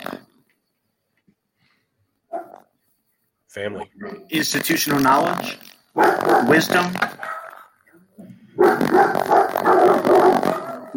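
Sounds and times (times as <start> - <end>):
dog barking: 2.3 - 2.7, 6.0 - 7.7, 8.6 - 10.9
speech: 3.6 - 7.4.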